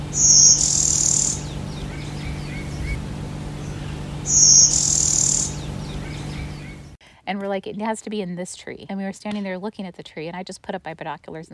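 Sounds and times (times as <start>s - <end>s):
Blue-winged Warbler singing buzzy song near the woods at French Village, Missouri: 0.0s - 7.0s
low background hum: 0.0s - 11.5s
speech: 7.6s - 11.5s.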